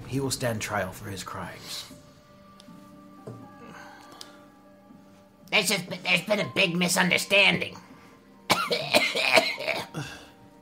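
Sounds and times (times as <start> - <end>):
speech: 0.1 - 2.0, 5.5 - 7.9, 8.7 - 10.2
person coughing harshly and raspily: 8.5 - 10.3.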